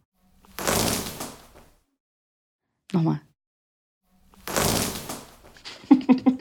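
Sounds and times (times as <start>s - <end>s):
gaffer tape being torn off roll: 0.4s - 1.8s, 4.3s - 5.7s
speech: 2.9s - 3.3s
laughter: 5.6s - 6.4s.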